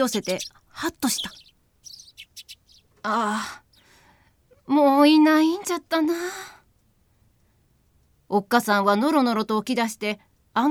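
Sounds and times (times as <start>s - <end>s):
speech: 0.0s - 1.5s, 3.0s - 3.6s, 4.7s - 6.6s, 8.3s - 10.6s
sparrows chirping: 0.0s - 3.0s.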